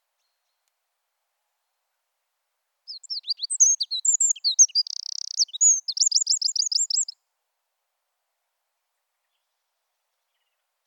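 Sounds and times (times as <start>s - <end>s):
Eurasian wren Troglodytes troglodytes singing: 2.9s - 7.2s.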